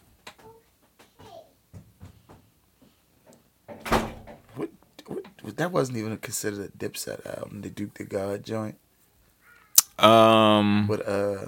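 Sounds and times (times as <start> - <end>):
door shutting: 3.7 - 4.6
speech: 5.5 - 8.8, 10.0 - 11.4.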